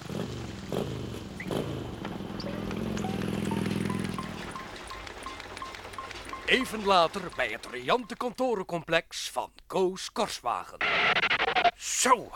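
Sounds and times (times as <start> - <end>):
small moped engine pulling away with a passenger: 0.0 - 7.7
clicks: 2.0 - 8.4
speech: 6.5 - 11.2, 11.8 - 12.3.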